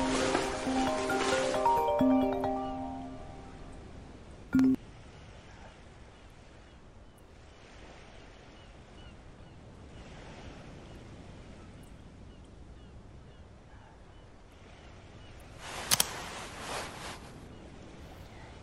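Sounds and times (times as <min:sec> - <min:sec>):
waves breaking in a bay: 0:00.0 - 0:12.7, 0:14.4 - 0:18.6
strong sea wind at a lighthouse overlooking a bay: 0:03.7 - 0:18.6.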